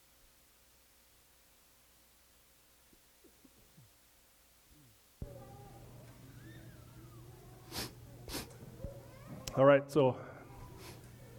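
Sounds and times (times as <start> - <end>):
audience sniffling: 7.6 - 8.6, 10.6 - 11.2
speech: 9.6 - 10.3.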